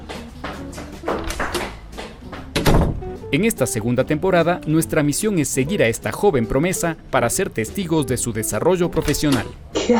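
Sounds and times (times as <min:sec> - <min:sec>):
bathroom door knocks and rattles as it opens: 0:01.1 - 0:03.1
bathroom door thudding shut: 0:02.4 - 0:03.1
speech: 0:03.3 - 0:09.9.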